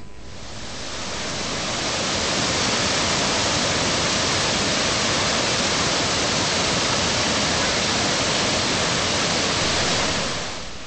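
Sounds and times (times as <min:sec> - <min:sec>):
roar of rushing water from large waterfalls: 0:00.8 - 0:10.8.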